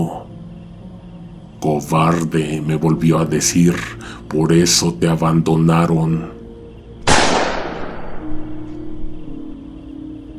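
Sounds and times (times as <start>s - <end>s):
speech: 1.6s - 6.4s
loud gunshot with echo: 7.0s - 8.5s.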